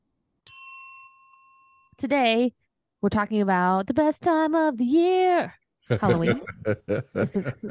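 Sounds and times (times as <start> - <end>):
notification bell ding sound effect: 0.5 - 2.0
speech: 2.0 - 7.6
laughter: 5.9 - 7.6.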